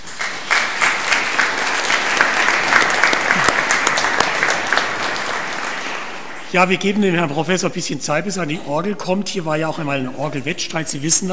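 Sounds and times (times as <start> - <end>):
room full of people applauding: 0.0 - 6.6
speech: 6.5 - 11.3.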